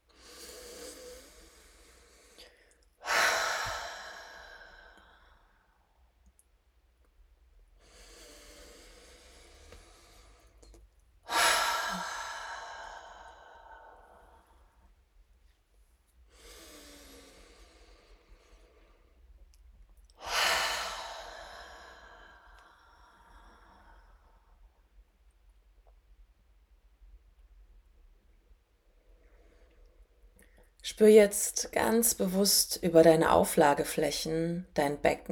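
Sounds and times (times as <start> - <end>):
deep breaths in through the nose and out through the mouth: 0.1 - 5.9, 7.8 - 14.9, 16.3 - 19.3, 20.2 - 24.6
speech: 30.8 - 35.3.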